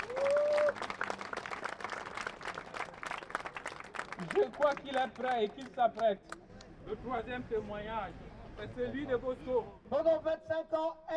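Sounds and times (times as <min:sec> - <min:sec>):
crowd applauding: 0:00.0 - 0:06.4
speech: 0:04.2 - 0:11.1.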